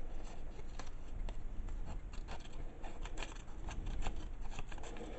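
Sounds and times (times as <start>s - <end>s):
light paper rustling: 0.1s - 5.1s
scissors cutting along a paper strip: 1.8s - 5.1s.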